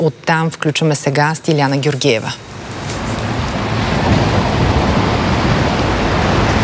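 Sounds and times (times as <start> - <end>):
speech: 0.0 - 2.9
Black Sea surf breaking on the beach: 2.6 - 6.6.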